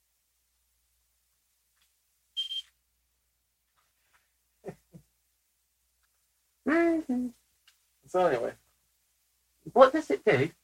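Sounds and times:
pager giving a short high electronic buzz: 2.4s - 2.7s
speech: 6.7s - 7.4s, 8.1s - 8.6s, 9.6s - 10.6s.

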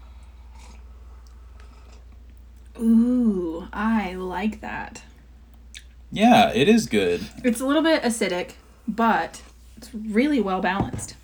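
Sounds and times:
low steady hum: 0.0s - 11.2s
slurping sip of hot dark roast coffee: 0.1s - 2.2s
speech: 2.8s - 5.1s, 6.1s - 11.2s.

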